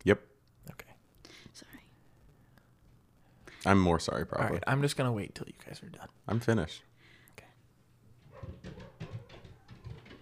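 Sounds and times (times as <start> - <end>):
speech: 0.0 - 0.8, 3.6 - 6.9
dogs barking: 8.2 - 10.0.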